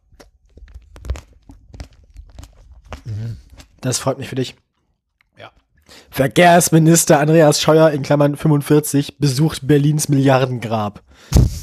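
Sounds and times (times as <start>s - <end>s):
crunchy biting and chewing of a tomato: 0.0s - 5.9s
speech: 3.1s - 4.6s, 6.2s - 11.6s.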